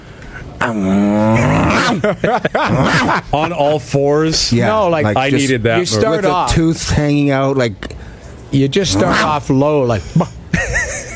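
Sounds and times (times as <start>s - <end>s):
person imitating a dog with a long throaty growl: 0.6s - 3.2s
speech: 0.6s - 10.4s
laughter: 1.6s - 4.0s, 10.0s - 11.1s.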